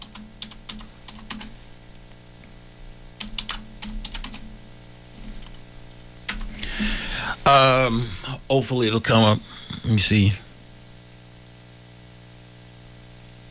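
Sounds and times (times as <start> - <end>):
typing on a computer keyboard: 0.0 - 1.5, 3.2 - 4.4, 6.3 - 6.5
speech: 7.5 - 10.4.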